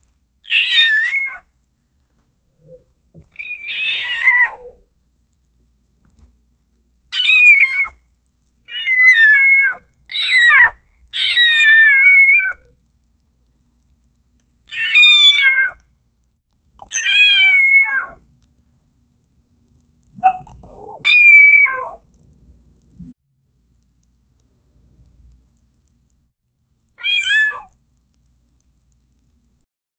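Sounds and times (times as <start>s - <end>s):
alien cats making noises: 0.4s - 1.5s, 2.6s - 4.9s, 7.1s - 8.0s, 8.7s - 12.7s, 14.7s - 15.8s, 16.8s - 18.2s, 20.1s - 22.0s, 27.0s - 27.8s.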